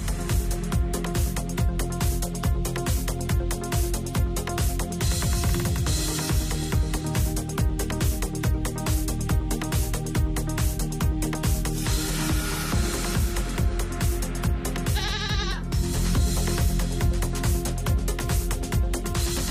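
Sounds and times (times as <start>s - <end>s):
steady rhythmic music bed: 0.0s - 19.4s
about 100 goats bleating on a drove road in Catalonia: 14.8s - 15.6s.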